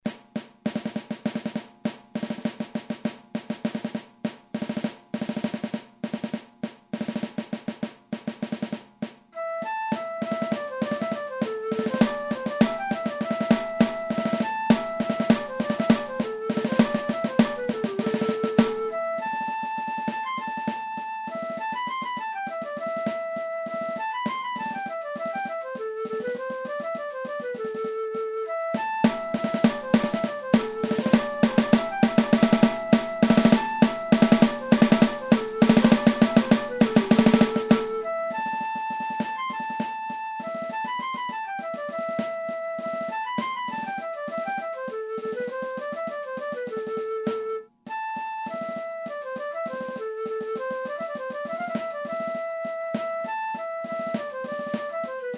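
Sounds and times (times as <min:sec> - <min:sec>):
drum: 0:00.0 - 0:09.3, 0:09.9 - 0:27.6, 0:28.8 - 0:47.1
flute: 0:07.0 - 0:08.8, 0:09.4 - 0:55.3.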